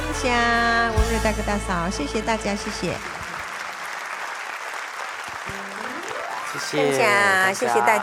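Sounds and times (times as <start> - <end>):
speech: 0.2 - 3.2, 6.6 - 8.0
audience applause: 2.8 - 8.0.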